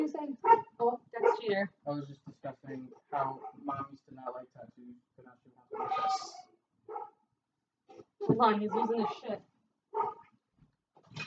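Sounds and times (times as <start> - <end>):
speech: 0.1 - 3.4, 8.4 - 9.4
dog barking and yelping: 0.4 - 1.6, 3.0 - 4.4, 5.7 - 6.3, 6.9 - 7.2, 8.7 - 10.3.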